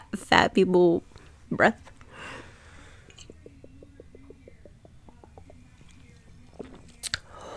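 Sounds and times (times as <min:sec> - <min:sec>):
speech: 0:00.1 - 0:01.9
person sipping and gulping a drink: 0:02.9 - 0:07.5
wet mouth sounds: 0:03.1 - 0:07.3.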